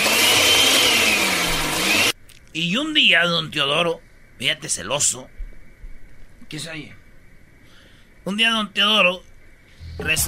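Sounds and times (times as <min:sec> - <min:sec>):
electric blender whirring at home: 0:00.0 - 0:02.2
speech: 0:02.6 - 0:05.4, 0:06.5 - 0:07.0, 0:08.2 - 0:09.3, 0:10.0 - 0:10.2.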